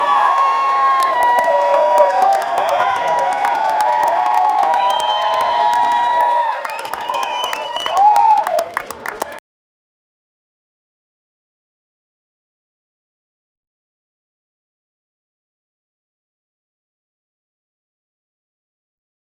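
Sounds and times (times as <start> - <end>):
club ambient noise of people: 0.0 - 9.4.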